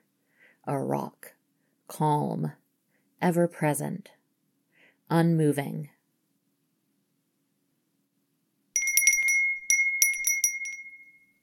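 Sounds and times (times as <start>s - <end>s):
speech: 0.6s - 2.6s, 3.2s - 4.2s, 5.1s - 6.0s
small collar bell jingling: 8.8s - 11.4s.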